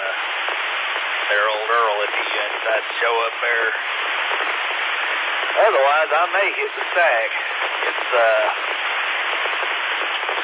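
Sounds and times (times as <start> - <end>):
voice: 0.0 - 0.2, 1.3 - 3.8, 5.5 - 8.8
heavy rain drumming on a tin roof: 0.0 - 10.4
speech: 1.3 - 4.8, 5.5 - 8.8.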